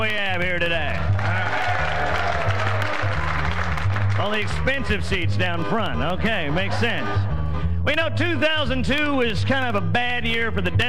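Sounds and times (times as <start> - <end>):
speech: 0.0 - 1.0, 4.2 - 7.3, 7.9 - 10.8
audience applauding at a political gathering: 1.1 - 4.7.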